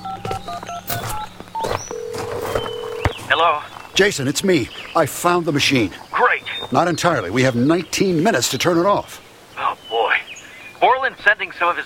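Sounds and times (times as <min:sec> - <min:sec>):
cell phone keypad tones while dialing: 0:00.0 - 0:03.2
steady noise: 0:00.0 - 0:11.8
speech: 0:03.4 - 0:06.0, 0:06.7 - 0:09.2, 0:11.2 - 0:11.8.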